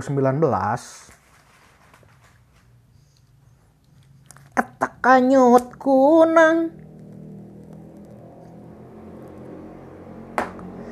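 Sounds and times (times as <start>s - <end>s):
speech: 0.0s - 1.1s, 5.0s - 6.8s
passing motorcycle engine droning: 5.0s - 10.8s.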